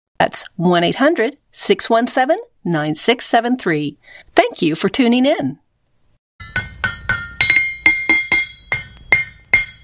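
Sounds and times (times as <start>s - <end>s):
speech: 0.2s - 5.6s
hammer striking a blacksmith's anvil: 6.4s - 9.8s.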